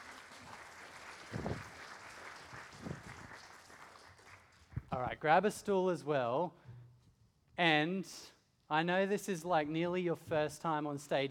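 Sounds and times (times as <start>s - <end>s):
congregation applauding: 0.0s - 4.8s
speech: 5.0s - 6.6s, 7.6s - 11.2s.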